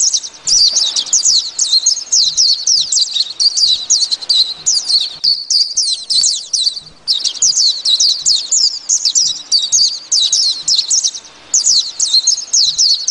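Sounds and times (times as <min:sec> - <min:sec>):
white-eye singing twittering warbled phrases: 0:00.0 - 0:13.1.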